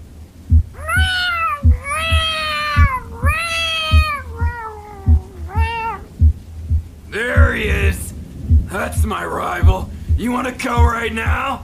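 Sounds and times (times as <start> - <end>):
steady thumping low beat: 0.4 - 11.6
cat meowing: 0.8 - 6.2
speech: 9.1 - 11.6.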